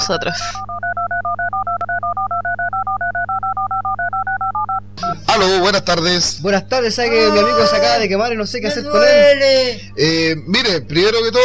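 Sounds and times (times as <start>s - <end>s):
telephone keypad tones dialed on a call to an automated emergency line: 0.0s - 5.2s
steady low hum: 0.0s - 11.4s
speech: 0.1s - 0.7s, 5.4s - 11.4s.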